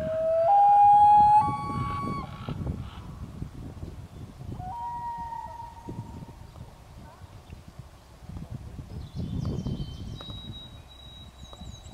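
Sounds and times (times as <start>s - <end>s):
loon wailing call: 0.0s - 2.4s, 4.6s - 6.0s.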